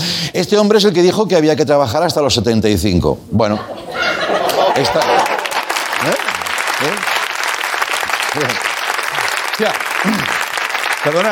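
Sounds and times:
speech: 0:00.2 - 0:03.9, 0:04.8 - 0:05.4, 0:06.0 - 0:07.1, 0:09.6 - 0:10.4, 0:11.0 - 0:11.3
laughter: 0:03.5 - 0:07.0
audience applause: 0:04.4 - 0:11.3.

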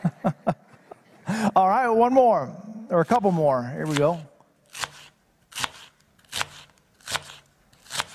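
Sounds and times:
laughter: 0:00.0 - 0:01.6
speech: 0:01.5 - 0:04.3
knife chopping onions on a board: 0:03.8 - 0:08.1.

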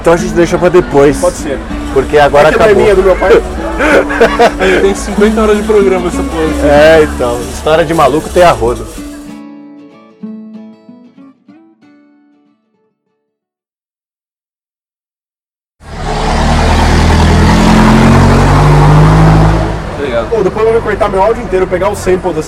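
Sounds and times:
car roaring past with deep engine rumble: 0:00.0 - 0:08.9, 0:15.8 - 0:22.4
speech: 0:00.0 - 0:09.0, 0:21.6 - 0:22.4
rushing street traffic of cars: 0:00.0 - 0:09.4, 0:15.8 - 0:22.4
plucked musical notes: 0:00.0 - 0:13.4
laughter: 0:02.7 - 0:05.3.

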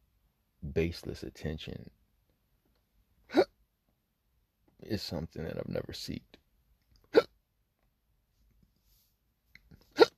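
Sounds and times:
speech: 0:00.8 - 0:02.0, 0:04.9 - 0:06.3
person hiccuping: 0:03.3 - 0:03.6, 0:07.0 - 0:07.4, 0:09.8 - 0:10.1.

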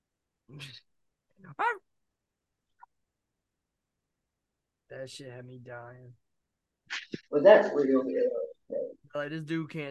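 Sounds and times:
speech: 0:00.5 - 0:01.9, 0:04.9 - 0:06.2, 0:07.1 - 0:08.4, 0:09.2 - 0:09.8
man imitating gruff dog barks: 0:01.5 - 0:01.8.

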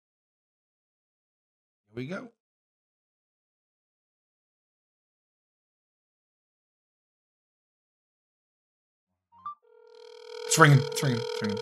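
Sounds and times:
speech: 0:02.0 - 0:02.4, 0:10.5 - 0:11.6
electronic ringback tone on a phone line: 0:09.8 - 0:11.6
phone line click: 0:10.2 - 0:11.6.

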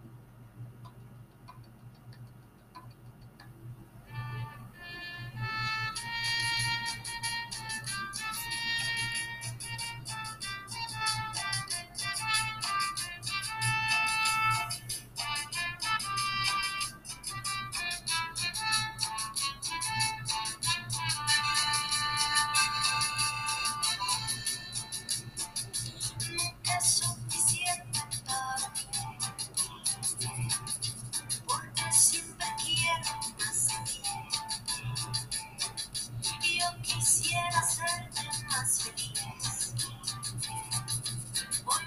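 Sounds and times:
recorded dance song with bouncy percussion beat and bright melodic lines: 0:05.0 - 0:41.8.

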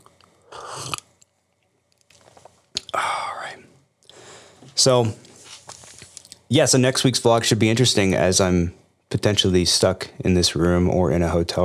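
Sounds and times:
person slurping coffee: 0:00.5 - 0:01.1
mouth and swallowing sounds: 0:00.5 - 0:01.2
speech: 0:00.8 - 0:01.0, 0:04.8 - 0:05.2, 0:06.5 - 0:11.6.

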